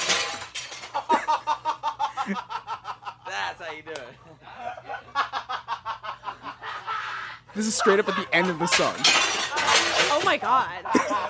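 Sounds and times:
glass shattering: 0.0 - 1.2, 8.1 - 10.6
laughter: 0.9 - 11.2
speech: 2.3 - 2.6, 3.6 - 5.4, 7.6 - 9.4, 10.2 - 11.2
glass pieces tinkling and scattering: 8.1 - 10.6.

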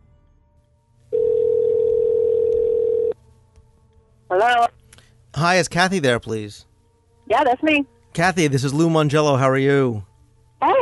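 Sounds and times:
telephone ringback tone: 1.1 - 3.2
speech: 4.3 - 4.8, 5.4 - 6.7, 7.3 - 10.7.

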